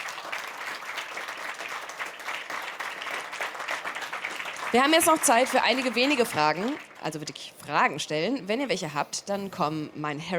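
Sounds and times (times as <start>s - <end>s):
crowd clapping: 0.0s - 7.3s
speech: 4.7s - 10.3s.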